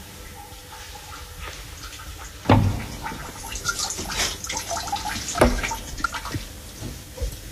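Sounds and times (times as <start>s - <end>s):
water rushing and gurgling through pipes inside a building: 0.0s - 7.5s
sharper knocks in building water pipes: 2.4s - 7.4s.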